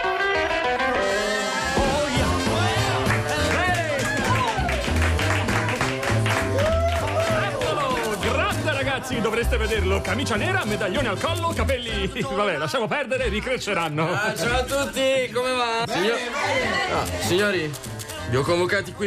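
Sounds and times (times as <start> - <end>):
loud dense crowd of fans screaming and cheering: 0.1 - 8.9
speech: 9.1 - 19.0.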